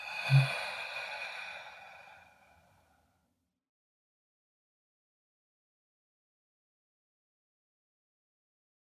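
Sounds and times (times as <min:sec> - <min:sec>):
slow breathy exhale during a guided relaxation breathing exercise: 0:00.0 - 0:03.2.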